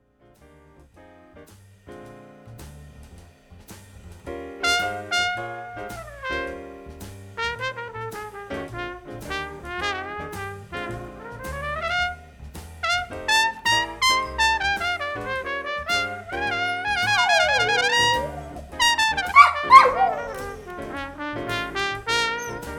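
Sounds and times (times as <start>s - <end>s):
jazz duet: 0.0s - 22.7s.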